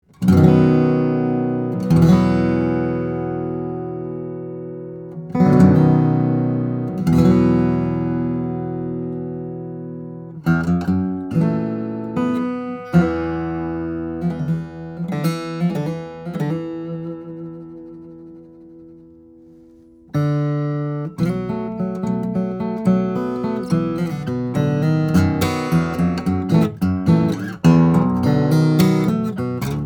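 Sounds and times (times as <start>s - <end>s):
baritone steel string flattop guitar with koa body and European spruce top: 0.0s - 29.8s.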